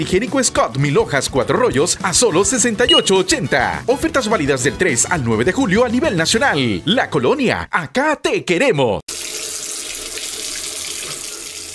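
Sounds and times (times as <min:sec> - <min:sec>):
speech: 0:00.0 - 0:09.2
water running from an open tap during washing: 0:09.1 - 0:11.7.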